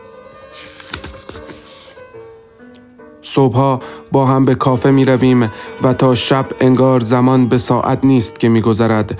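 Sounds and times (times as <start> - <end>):
paper page being turned: 0.4 - 2.0
speech: 3.3 - 9.1.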